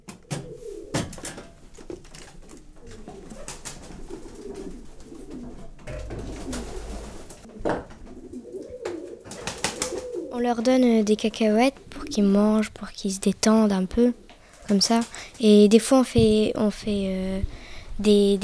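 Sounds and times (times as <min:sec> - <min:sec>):
pigeons cooing in a pigeon loft: 0:00.0 - 0:13.0
pigeon wing flutters and rustles: 0:00.4 - 0:07.5, 0:08.6 - 0:10.3
speech: 0:10.4 - 0:18.4.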